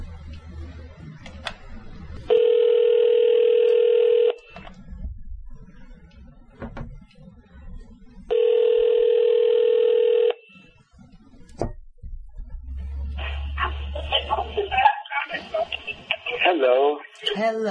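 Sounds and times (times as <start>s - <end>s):
noise: 0.0s - 17.6s
outgoing call telephone ringback tone: 2.3s - 4.4s, 8.3s - 10.4s
voices: 12.7s - 17.6s.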